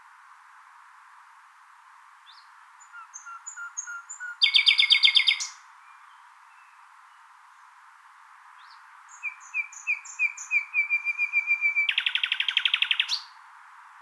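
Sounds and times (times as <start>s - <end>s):
common nightingale Luscinia megarhynchos singing: 2.3s - 7.2s, 8.6s - 13.3s.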